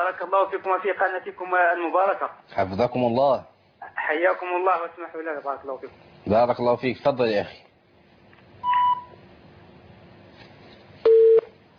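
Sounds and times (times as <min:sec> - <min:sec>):
speech: 0:00.0 - 0:07.6
telephone busy tones after a call-in caller's line drops: 0:11.1 - 0:11.5.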